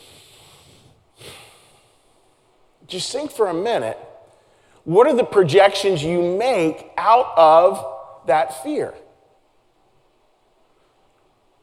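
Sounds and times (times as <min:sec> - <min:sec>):
breath drawn in through the nose or mouth: 0:00.0 - 0:02.3
hiss: 0:00.0 - 0:11.6
speech: 0:02.9 - 0:04.1, 0:04.8 - 0:09.0.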